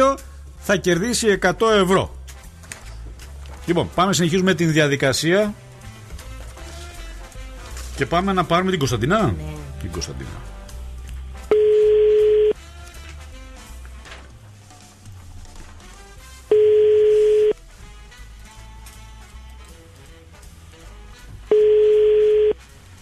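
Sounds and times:
quiet music: 0.0s - 23.0s
speech: 0.1s - 2.2s, 3.7s - 5.6s, 8.0s - 10.5s
telephone ringback tone of an unanswered call: 11.5s - 12.6s, 16.5s - 17.6s, 21.5s - 22.6s.

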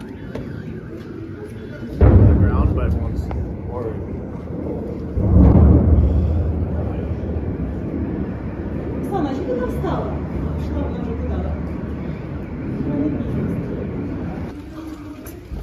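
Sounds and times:
steady roar: 0.0s - 15.6s
air defense explosions during missile attack: 2.0s - 12.7s.

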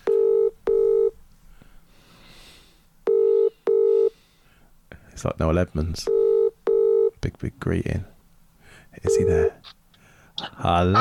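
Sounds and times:
telephone ringing tone of an outgoing call on speakerphone: 0.0s - 1.2s, 3.1s - 4.1s, 6.1s - 7.2s, 9.1s - 9.6s
speech: 5.2s - 6.2s, 7.2s - 8.1s, 9.0s - 9.8s, 10.6s - 10.9s.

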